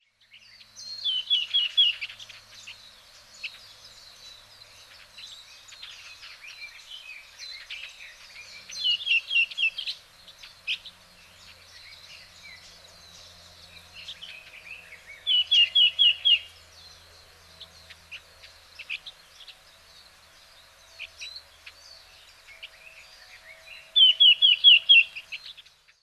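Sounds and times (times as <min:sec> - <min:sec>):
red-billed leiothrix in Hyogo: 0:00.0 - 0:26.0.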